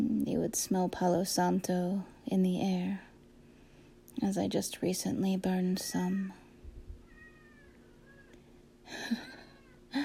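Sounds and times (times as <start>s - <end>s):
speech: 0.2s - 3.1s, 4.2s - 6.4s, 8.9s - 9.3s
cat meowing: 7.0s - 8.4s.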